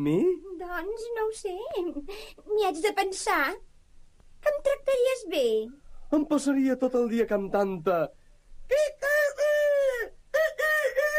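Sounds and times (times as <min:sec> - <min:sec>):
speech: 0:00.0 - 0:03.7, 0:04.4 - 0:09.2
person imitating rooster crowing: 0:08.7 - 0:11.1.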